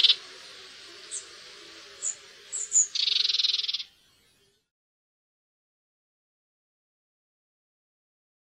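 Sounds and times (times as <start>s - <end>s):
Red-backed shrike calls with thin high notes and dry buzzing rattle: 0.0s - 4.7s.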